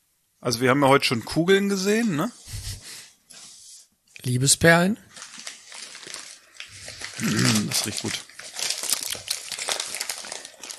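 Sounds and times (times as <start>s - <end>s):
speech: 0.4s - 2.5s, 4.2s - 5.1s, 7.2s - 8.3s
package rustling as it is handled: 5.0s - 10.7s.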